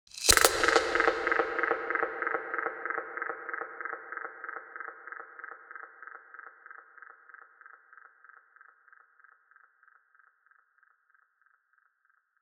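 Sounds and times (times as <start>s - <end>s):
drums and percussion loop: 0.1s - 4.2s.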